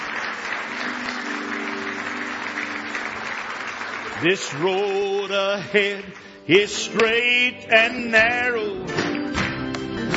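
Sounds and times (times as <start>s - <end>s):
congregation clapping at a worship service: 0.0s - 7.4s, 8.9s - 10.1s
speech: 4.2s - 9.0s.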